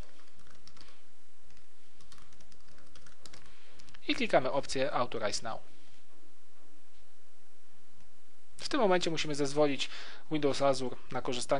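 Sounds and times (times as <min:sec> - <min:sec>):
rapid typing on a computer keyboard: 0:00.0 - 0:00.9, 0:01.5 - 0:04.0
speech: 0:04.1 - 0:05.8, 0:08.7 - 0:11.5.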